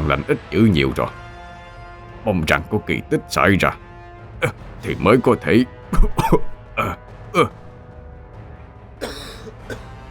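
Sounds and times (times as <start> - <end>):
speech: 0.1 - 1.2, 2.2 - 3.8, 4.4 - 7.6
weakened man coughing in harsh short bursts: 5.9 - 7.8, 9.0 - 9.9.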